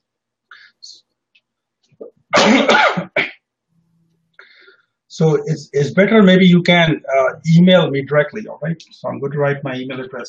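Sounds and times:
harsh coughs: 2.3 - 3.4
faint breathy sounds: 4.4 - 5.0
speech: 5.2 - 10.2.

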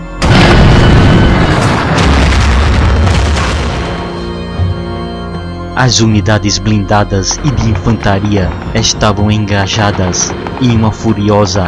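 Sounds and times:
sustained roar of blast and debris from tank explosion: 0.2 - 4.2
German Tiger tank exploding after being struck by a burning Soviet tank: 0.2 - 4.4
speech: 5.8 - 11.6.

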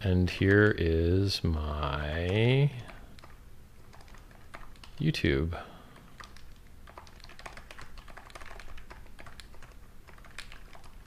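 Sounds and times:
speech: 0.0 - 2.9, 5.0 - 5.7
typing on a computer keyboard: 0.3 - 0.8, 2.1 - 5.1, 5.9 - 11.0.

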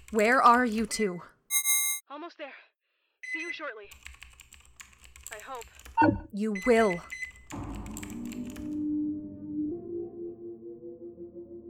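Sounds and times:
speech: 0.1 - 1.3, 2.1 - 2.7, 3.3 - 4.1, 5.3 - 7.8
typing on a computer keyboard: 3.9 - 8.8.

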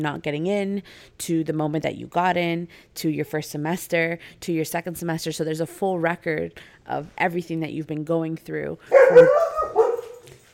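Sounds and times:
speech: 0.0 - 9.8
dog barking inside a house: 8.9 - 10.3.

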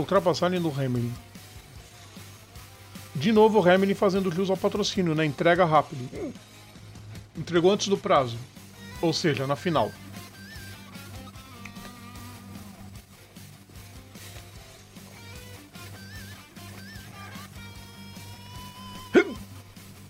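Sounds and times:
speech: 0.0 - 1.3, 3.2 - 6.5, 7.4 - 10.0
single sharp hiccup: 6.0 - 6.4, 18.9 - 19.5.

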